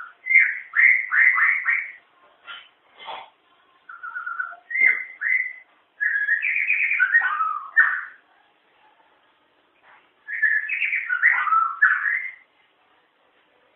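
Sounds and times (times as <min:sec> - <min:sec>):
White-rumped shama singing fluty whistles and warbled notes: 0:00.0 - 0:02.0, 0:03.9 - 0:08.2, 0:10.3 - 0:12.4.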